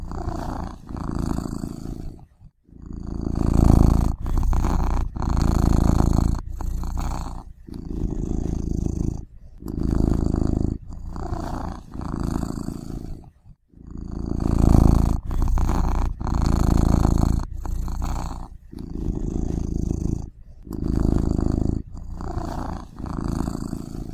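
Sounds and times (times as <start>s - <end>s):
cat purring: 0.0s - 24.1s.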